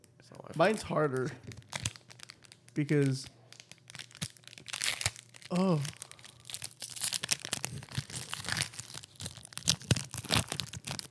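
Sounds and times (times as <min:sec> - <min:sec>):
speech: 0:00.3 - 0:01.6, 0:02.8 - 0:03.4, 0:05.5 - 0:06.0
Pokémon trading card pack packaging being torn open: 0:01.4 - 0:11.0.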